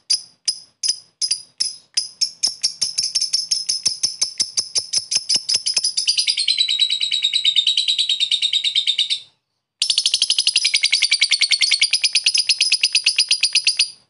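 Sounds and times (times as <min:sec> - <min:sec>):
lovebird piercing chips and buzzy chattering trill: 0:00.0 - 0:14.0.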